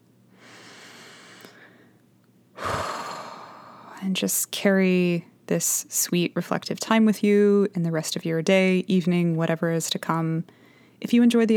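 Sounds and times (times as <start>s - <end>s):
soft inhale at the close of a guided reflection: 0.3s - 2.0s, 2.6s - 4.0s, 10.5s - 11.0s
rushing exhale: 0.4s - 1.9s, 2.6s - 4.0s
speech: 4.0s - 11.5s.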